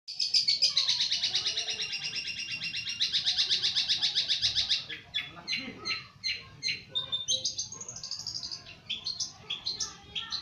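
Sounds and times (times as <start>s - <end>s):
long-tailed shrike song of scratchy chatter and high whistles: 0.1s - 10.3s.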